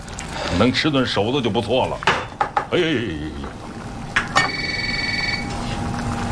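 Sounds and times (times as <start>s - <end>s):
speech: 0.6s - 2.1s, 2.7s - 3.6s
phone ringing with a steady electronic tone: 4.3s - 5.6s.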